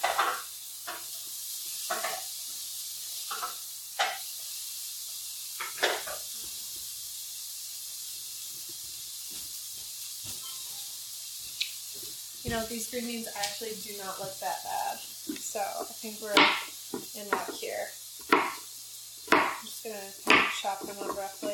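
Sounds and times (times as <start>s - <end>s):
onions sizzling in a hot pan: 0.0s - 21.5s
speech: 12.5s - 15.0s, 15.6s - 18.5s, 19.8s - 21.5s.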